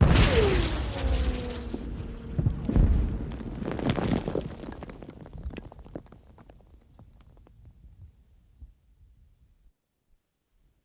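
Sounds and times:
cannon mortar shot: 0.0 - 3.6.

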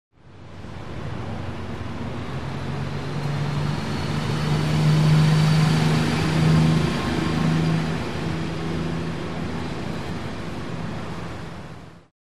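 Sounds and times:
bus passing by: 0.2 - 12.1.

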